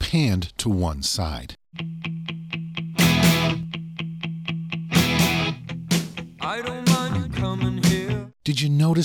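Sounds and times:
speech: 0.1 - 1.9, 8.5 - 9.0
two distorted electric guitars chugging: 2.8 - 3.8, 4.9 - 8.1.

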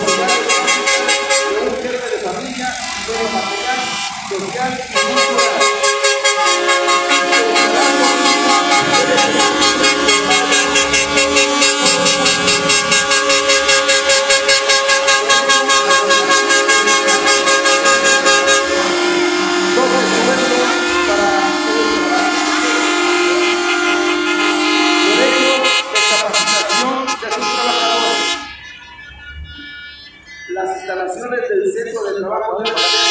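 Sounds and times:
trailer truck horns honking in a parade of balloon-decorated trailers: 0.0 - 33.0.

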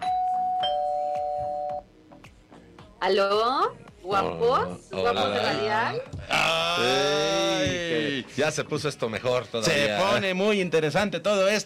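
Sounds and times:
doorbell chiming a two-note ding-dong: 0.0 - 1.8
speech: 3.0 - 11.6.

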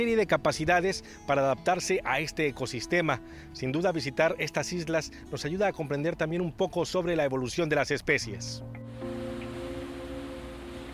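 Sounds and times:
speech: 0.0 - 8.8
faint sustained hum: 8.8 - 10.9
steady wash of ocean waves: 8.9 - 10.9.

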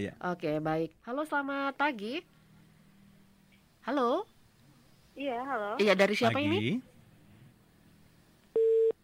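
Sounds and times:
speech: 0.0 - 2.4, 3.9 - 4.3, 5.2 - 6.9
voice on an incoming phone call: 5.5 - 6.8
phone busy tone beep: 8.6 - 9.0.

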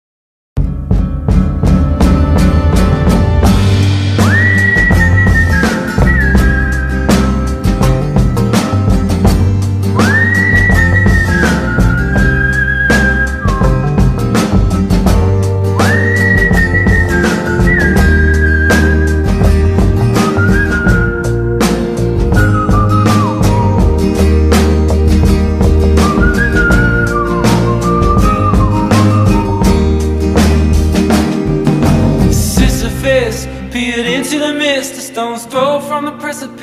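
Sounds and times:
song played by a full band: 0.6 - 36.6
whistled melody: 3.6 - 8.3, 9.8 - 30.9.

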